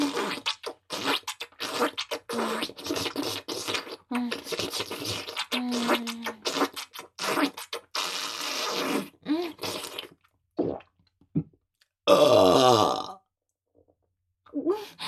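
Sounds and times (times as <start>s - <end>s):
shorter throaty bursts: 0.0s - 10.8s, 12.1s - 13.2s
gulping and slurping: 0.0s - 10.9s
loud drawn-out burp: 11.4s - 13.3s.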